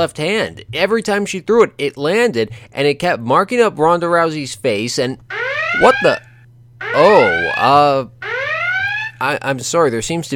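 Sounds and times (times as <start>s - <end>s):
speech: 0.0s - 6.3s, 6.9s - 8.4s, 9.2s - 10.3s
loud electronic alarm siren: 5.3s - 9.2s.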